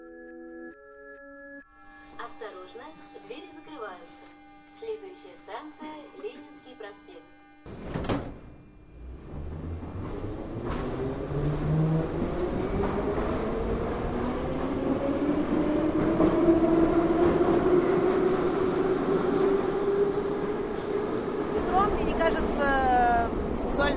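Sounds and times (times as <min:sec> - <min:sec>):
metro train running with a continuous loud rumble: 0:08.7 - 0:23.9.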